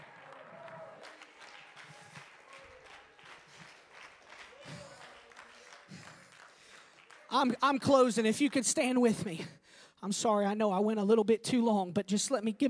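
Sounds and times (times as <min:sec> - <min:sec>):
people shouting and cheering: 0:00.0 - 0:06.1
crowd clapping: 0:00.0 - 0:09.2
speech: 0:07.3 - 0:12.6.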